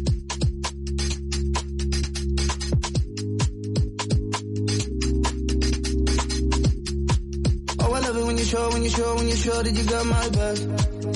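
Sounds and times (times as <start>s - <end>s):
steady punchy beat with crisp hi-hats: 0.0s - 11.1s
pop song with male vocals: 7.7s - 11.1s
speech: 8.7s - 11.1s.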